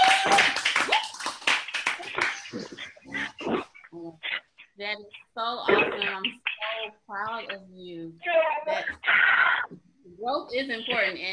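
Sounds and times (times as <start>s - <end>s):
group clapping: 0.0s - 3.2s
speech: 4.9s - 9.6s, 10.2s - 11.3s.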